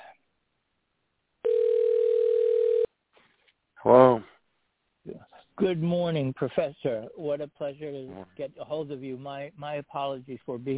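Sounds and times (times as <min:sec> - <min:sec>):
telephone dial tone while placing a call: 0:01.4 - 0:02.9
speech: 0:05.6 - 0:10.7.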